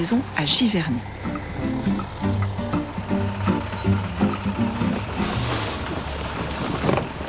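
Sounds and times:
speech: 0:00.0 - 0:01.3
large school-trip bus engine rumbling as it pulls up at Giverny: 0:00.0 - 0:07.2
bus air brakes hissing as they release: 0:02.0 - 0:06.9.

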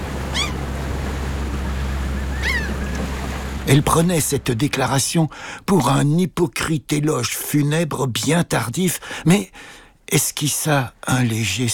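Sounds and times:
surf of waves breaking on a nearby beach: 0:00.0 - 0:05.6
high bird calls, perhaps gulls: 0:00.3 - 0:00.7, 0:02.0 - 0:03.0
speech: 0:03.7 - 0:11.7.

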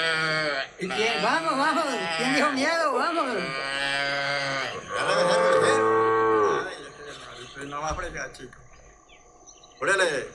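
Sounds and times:
calves and cattle mooing during a morning round-up: 0:00.0 - 0:07.5
quieter voices calling out: 0:00.0 - 0:10.3
speech: 0:00.8 - 0:03.8, 0:07.8 - 0:08.6, 0:09.8 - 0:10.3.

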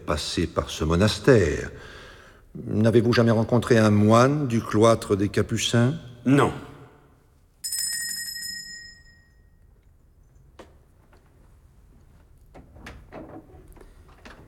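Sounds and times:
speech: 0:00.1 - 0:02.0, 0:02.6 - 0:06.7
bright bell ringing: 0:07.6 - 0:09.7.

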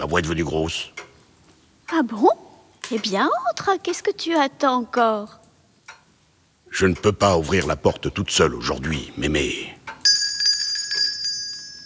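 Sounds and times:
speech: 0:00.0 - 0:01.0, 0:01.9 - 0:05.4, 0:06.7 - 0:10.0
small bell rung at a door: 0:10.0 - 0:11.8.

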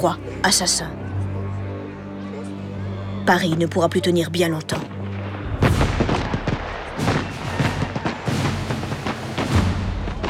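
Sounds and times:
speech: 0:00.0 - 0:01.1, 0:03.3 - 0:05.0
cannon fire booms: 0:05.2 - 0:10.2.

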